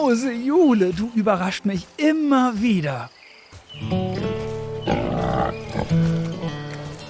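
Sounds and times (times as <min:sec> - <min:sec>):
speech: 0:00.1 - 0:04.1
piglets grunting and squealing while eating from hand: 0:04.9 - 0:06.1.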